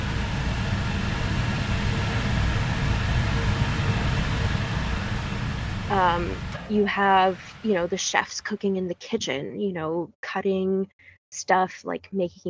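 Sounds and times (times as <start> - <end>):
server room computer hum: 0.0 - 8.9
broadband fan-like hiss: 0.0 - 9.0
faint tonal whine: 0.0 - 9.0
speech: 5.9 - 12.4.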